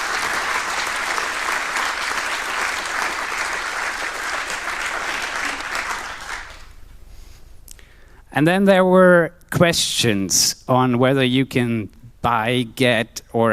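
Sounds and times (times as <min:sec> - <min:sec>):
sustained applause from a sizable audience: 0:00.0 - 0:06.8
speech: 0:08.4 - 0:13.5.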